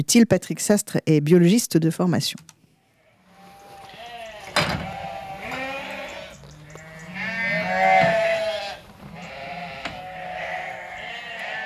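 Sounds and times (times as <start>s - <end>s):
speech: 0.0s - 2.6s
several sheep bleating: 3.0s - 11.6s.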